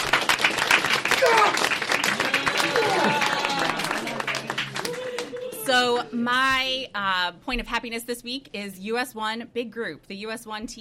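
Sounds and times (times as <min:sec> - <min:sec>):
crowd applauding: 0:00.0 - 0:05.9
faint voices or cheers: 0:01.1 - 0:05.7
speech: 0:06.1 - 0:10.8.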